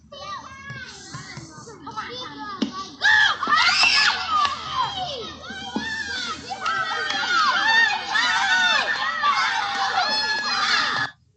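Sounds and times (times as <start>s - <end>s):
children playing and shouting with squeals and screams: 0.1s - 11.2s.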